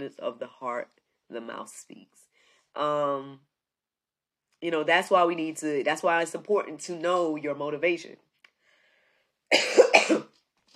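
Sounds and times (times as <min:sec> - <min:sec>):
speech: 0:00.0 - 0:03.5, 0:04.6 - 0:08.3, 0:09.5 - 0:10.3
person coughing: 0:09.5 - 0:10.4.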